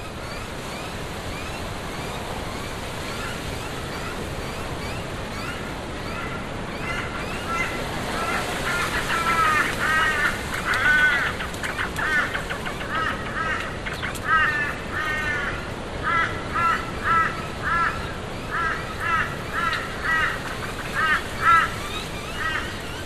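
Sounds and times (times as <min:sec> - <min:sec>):
steady rushing wind against a tent: 0:00.0 - 0:23.0
crows cawing: 0:06.9 - 0:22.8.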